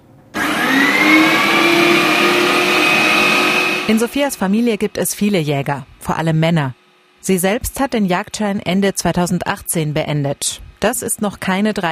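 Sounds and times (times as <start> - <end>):
motorized meat grinder running: 0.4 - 4.0
speech: 3.9 - 11.9.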